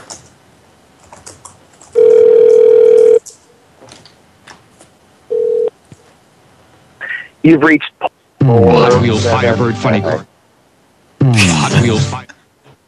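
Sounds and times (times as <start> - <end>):
telephone ringback tone from a call ringing out before voicemail: 2.0 - 3.2, 5.3 - 5.7
speech: 7.4 - 7.9, 8.5 - 10.3, 11.3 - 12.3.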